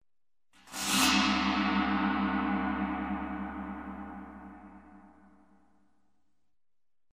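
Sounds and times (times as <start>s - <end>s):
large gong with metallic effect: 0.8s - 5.6s.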